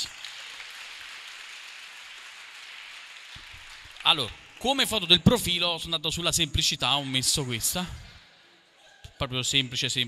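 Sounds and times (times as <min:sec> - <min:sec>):
audience applause: 0:00.0 - 0:05.3
speech: 0:03.4 - 0:08.1, 0:09.2 - 0:10.0.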